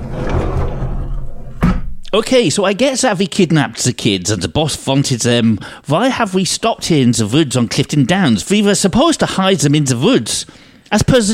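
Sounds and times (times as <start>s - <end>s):
heavy sliding van door opening: 0.0s - 2.0s
speech: 2.1s - 11.3s.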